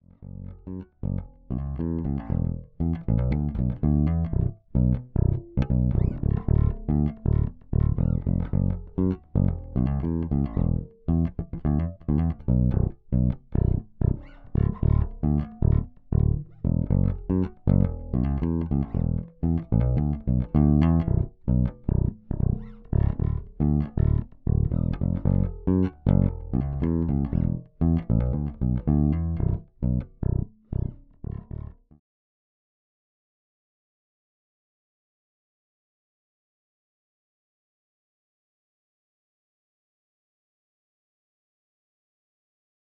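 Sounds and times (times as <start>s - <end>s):
bass: 0.0s - 32.0s.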